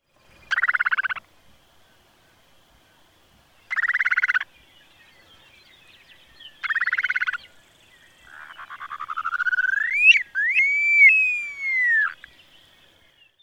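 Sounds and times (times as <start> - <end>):
Upland Sandpiper calling: 0.4 - 1.3, 3.7 - 4.5, 6.6 - 7.4, 8.2 - 12.3.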